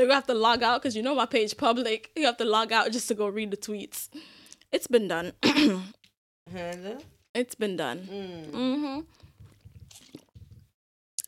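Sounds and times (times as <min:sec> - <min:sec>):
speech: 0:00.0 - 0:09.3
person sipping and swallowing water: 0:08.1 - 0:11.2.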